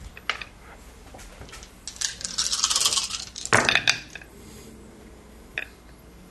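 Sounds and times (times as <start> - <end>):
handful of dice rattling across a hard surface: 1.9 - 4.0.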